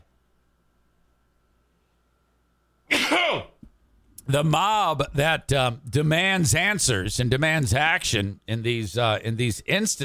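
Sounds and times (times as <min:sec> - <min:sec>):
person sneezing: 0:02.9 - 0:03.7
speech: 0:04.3 - 0:10.0.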